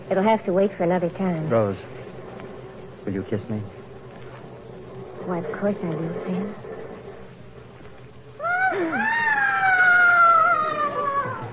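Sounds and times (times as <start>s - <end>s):
faint low rumble: 0.0s - 11.5s
speech: 0.1s - 2.0s, 3.1s - 3.8s, 5.2s - 6.7s
loud high-pitched scream from upstairs: 8.4s - 11.5s.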